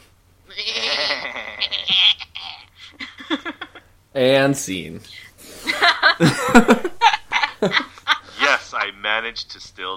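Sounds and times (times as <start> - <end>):
goats bleating: 0.5 - 2.7
laughter: 1.0 - 3.9, 5.6 - 9.0
speech: 4.2 - 5.3, 6.2 - 6.9, 7.6 - 7.9, 9.1 - 9.9.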